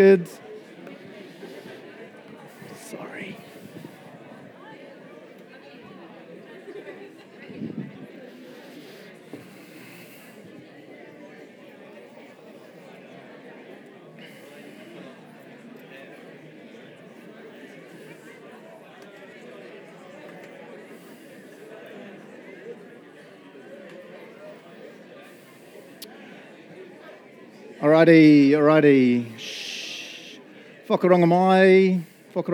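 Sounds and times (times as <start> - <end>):
speech: 0.0 - 0.4, 28.0 - 29.6, 30.9 - 32.5
large crowd chatting and greeting one another: 0.0 - 32.5.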